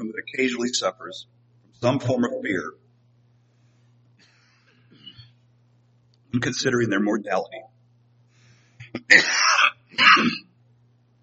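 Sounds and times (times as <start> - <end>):
steady low hum: 0.0 - 11.2
speech: 0.2 - 2.8, 6.3 - 7.7, 8.9 - 10.4
person clearing throat: 8.8 - 10.6
harsh cough: 8.9 - 10.5.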